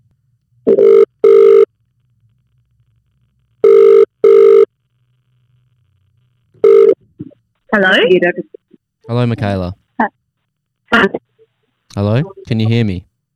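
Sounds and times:
double-burst telephone ringback tone while placing a call: 0.7 - 1.7, 3.6 - 4.7, 6.6 - 7.0
speech: 7.8 - 10.2, 12.0 - 13.1.

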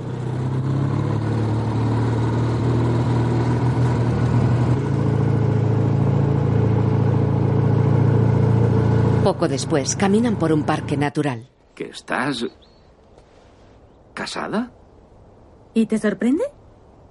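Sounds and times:
motorcycle engine accelerating while riding: 0.0 - 11.0
speech: 9.4 - 12.7, 14.2 - 14.8, 15.7 - 16.6.

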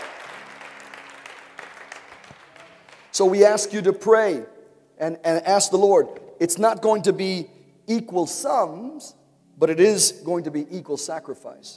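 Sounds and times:
audience applause: 0.0 - 3.1
speech: 3.2 - 11.7.

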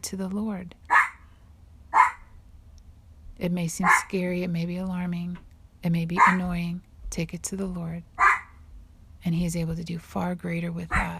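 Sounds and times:
speech: 0.0 - 0.9, 3.4 - 8.1, 9.2 - 11.1
low hum: 0.0 - 11.1
dog barking: 0.9 - 1.2, 2.0 - 2.3, 3.8 - 4.1, 6.2 - 6.4, 8.2 - 8.5.

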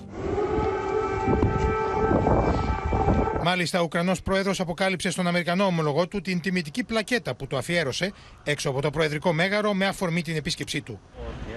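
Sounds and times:
air raid siren wailing during a wreath-laying at a memorial in Kyiv, Ukraine: 0.0 - 3.6
speech: 3.4 - 11.5.

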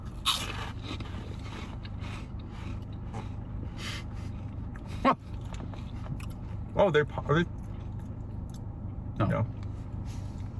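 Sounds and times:
crunching into cinnamon twist snacks: 0.0 - 2.8
low steady hum: 0.0 - 10.5
speech: 5.0 - 5.2, 6.8 - 7.6.

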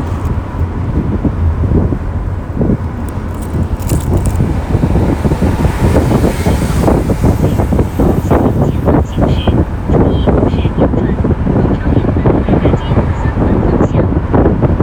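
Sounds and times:
passing traffic: 0.0 - 14.8
taxi road rumble at night on a summer ring road: 0.0 - 14.8
wind buffeting through open taxi windows: 0.0 - 14.8
faint voices: 6.5 - 14.3.

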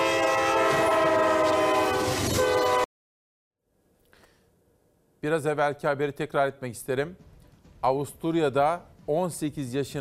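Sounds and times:
train horn blaring: 0.0 - 2.9
speech: 5.2 - 10.0.

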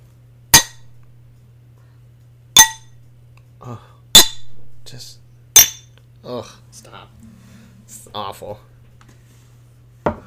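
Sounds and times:
faint steady low hum: 0.0 - 10.2
glass clinking: 2.6 - 2.9, 5.6 - 5.9
speech: 3.6 - 4.0, 4.9 - 5.2, 6.2 - 8.7.

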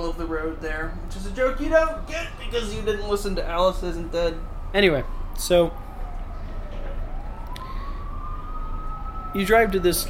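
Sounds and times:
fire truck sirens wailing as they race past: 0.0 - 10.0
low rumble of road traffic: 0.0 - 10.0
speech: 0.1 - 5.8, 9.3 - 10.0.

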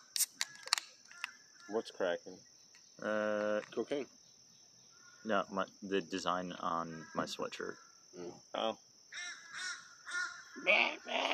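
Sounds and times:
crows cawing: 0.4 - 1.9, 4.9 - 5.4, 6.8 - 8.0, 9.1 - 11.3
speech: 1.7 - 4.2, 5.2 - 9.3, 10.6 - 11.3.

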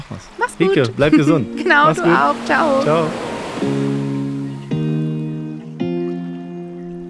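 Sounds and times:
ocean surf: 0.0 - 5.5
speech: 0.1 - 3.9
sustained resonant chords: 1.0 - 7.0.

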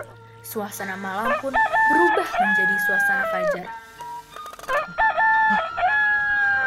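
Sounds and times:
speech: 0.4 - 3.8
rooster crowing: 1.2 - 3.7, 4.7 - 6.6.

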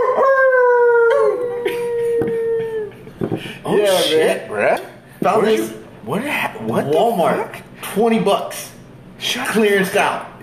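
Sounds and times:
novelty toy playing a recorded wolf howl: 0.0 - 2.9
speech: 3.8 - 8.6, 9.3 - 10.4.

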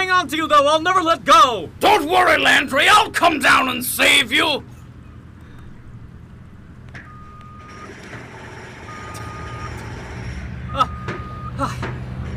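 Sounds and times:
loud low diesel rumble: 0.0 - 12.3
speech: 0.2 - 4.7, 11.6 - 12.0
truck reversing alarm beeps: 4.7 - 11.8.

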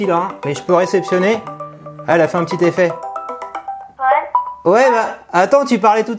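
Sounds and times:
speech: 0.0 - 3.1, 4.6 - 6.1
smartphone ringtone for an incoming video call: 0.0 - 4.7.

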